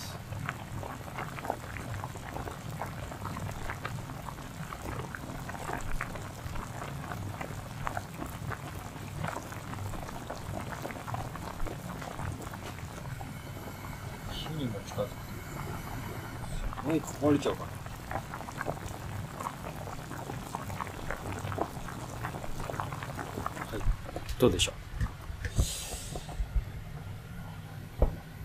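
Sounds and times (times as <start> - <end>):
pot of pasta boiling: 0.0 - 28.4
speech: 16.9 - 17.7, 24.4 - 24.8.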